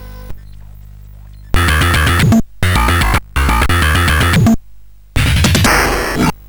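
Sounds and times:
microtuned CSG8580R5 SID chip synth: 0:01.6 - 0:04.6, 0:05.2 - 0:06.4.

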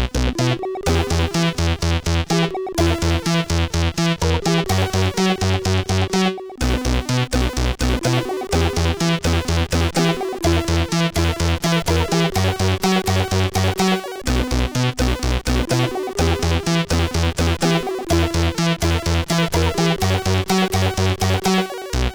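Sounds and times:
SID 8580R5 chiptune music: 0:00.2 - 0:22.0.

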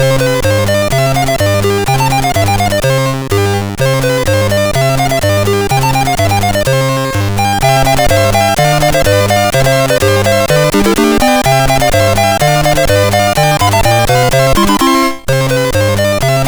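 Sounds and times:
C64 chiptune music on a MOS6581R2 sound chip: 0:00.1 - 0:03.0, 0:04.0 - 0:16.4.

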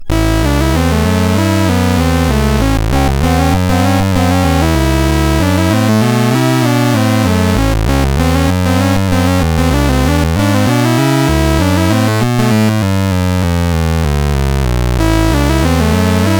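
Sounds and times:
blues music on a CSG8580R5 sound chip: 0:00.0 - 0:16.3.

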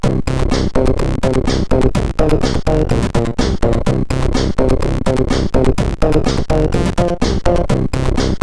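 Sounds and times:
bass loop from CSG8580R5 sound chip: 0:00.0 - 0:08.4.

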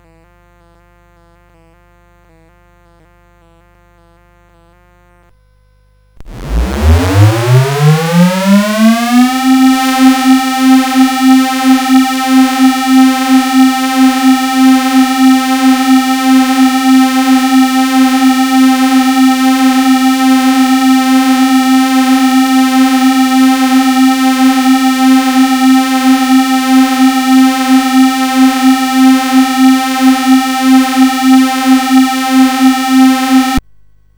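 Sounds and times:
CSG8580R5 air siren: 0:06.3 - 0:33.6.

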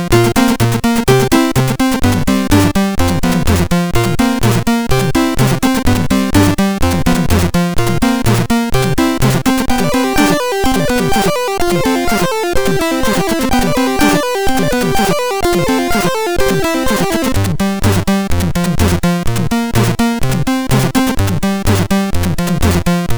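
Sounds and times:
MOS6581 synthesizer chip tune: 0:00.1 - 0:23.1.

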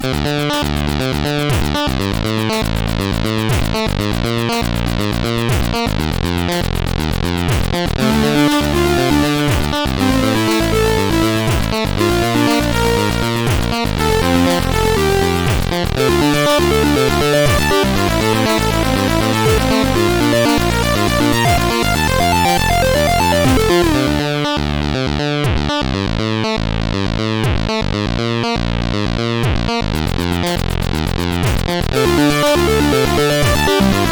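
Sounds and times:
CSG8580R5 bass rumble: 0:00.0 - 0:34.1.

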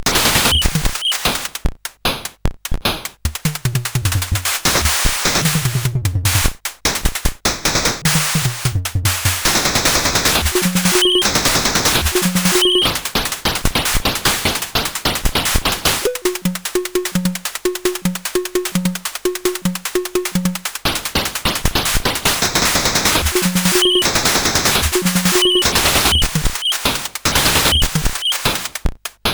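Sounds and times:
drum action on a SID CSG8580R5 chip: 0:00.0 - 0:28.7.

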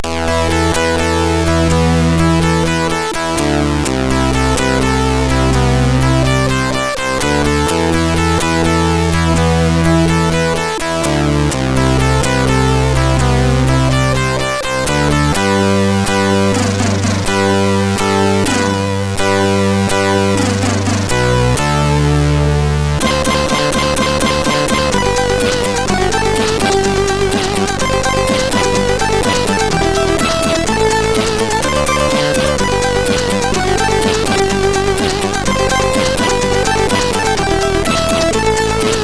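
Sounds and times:
chiptune title music on a MOS6581R3 SID chip: 0:00.0 - 0:39.0.

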